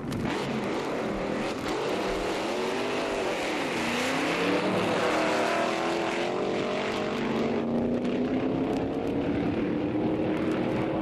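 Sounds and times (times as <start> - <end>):
racing car engine revving and accelerating: 0.2 - 10.9.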